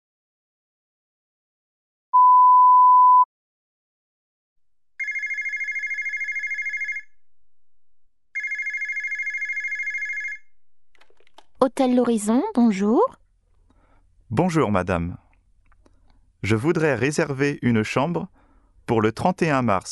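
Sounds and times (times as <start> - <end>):
short beep tone: 2.2 - 3.3
telephone ringing with a warbling trill: 5.0 - 7.1, 8.4 - 10.4
speech: 11.6 - 13.2, 14.3 - 15.2, 16.4 - 19.9.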